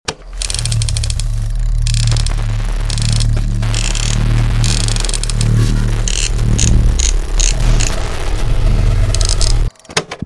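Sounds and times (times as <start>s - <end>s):
radio channel switching: 0.1s - 9.7s.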